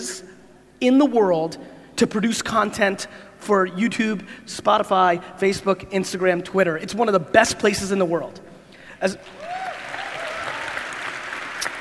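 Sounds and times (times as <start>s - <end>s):
speech: 0.8s - 9.7s
audience applause: 9.3s - 11.7s.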